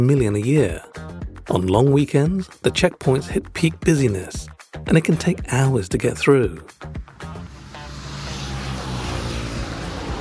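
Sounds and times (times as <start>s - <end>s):
speech: 0.0s - 7.3s
stream of motorcycles passing in early-morning traffic: 7.0s - 10.2s.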